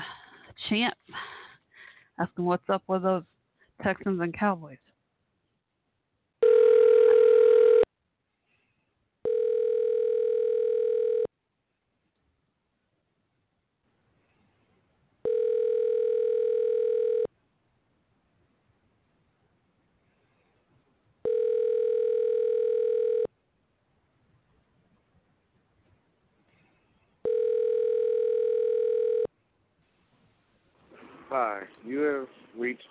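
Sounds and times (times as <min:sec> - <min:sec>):
speech: 0:00.7 - 0:01.3, 0:02.2 - 0:04.9
phone outgoing ringback tone: 0:06.4 - 0:07.9, 0:09.2 - 0:11.3, 0:15.2 - 0:17.3, 0:21.2 - 0:23.3, 0:27.2 - 0:29.3.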